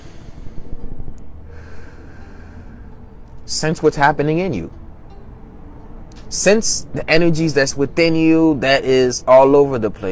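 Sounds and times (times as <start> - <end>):
deep nasal breath: 0.0 - 3.4
speech: 3.5 - 4.8, 6.3 - 10.1.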